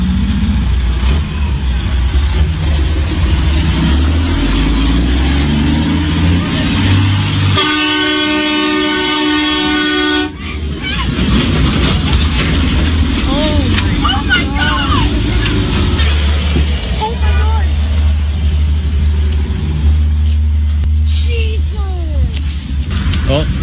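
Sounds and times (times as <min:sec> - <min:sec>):
livestock truck diesel engine rumble: 0:00.0 - 0:23.6
outdoor commotion: 0:00.0 - 0:23.6
people's voices: 0:00.9 - 0:23.6
livestock truck air horn blaring: 0:03.8 - 0:10.5.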